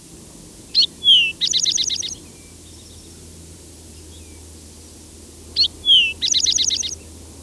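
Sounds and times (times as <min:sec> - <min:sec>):
rufous-sided towhee calling: 0:00.7 - 0:03.3, 0:03.9 - 0:07.1.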